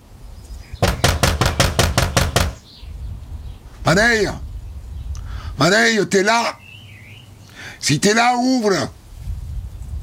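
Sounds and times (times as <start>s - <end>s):
knocking on the door of an old man's house in a French village: 0.8s - 2.6s
speech: 3.9s - 4.4s, 5.6s - 6.6s, 7.8s - 9.0s.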